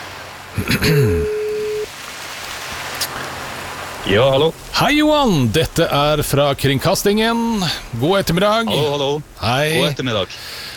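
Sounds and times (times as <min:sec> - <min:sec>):
speech: 0:00.6 - 0:01.4, 0:04.0 - 0:10.6
ringback tone on an outgoing phone call: 0:01.2 - 0:01.9
faint hiss: 0:01.6 - 0:10.7.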